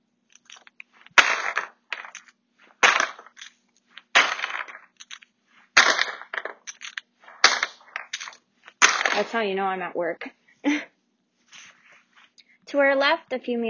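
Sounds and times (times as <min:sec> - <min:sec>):
tubes crashing as they're dropped into a bin: 0:00.4 - 0:09.4
speech: 0:09.2 - 0:10.8, 0:12.7 - 0:13.6.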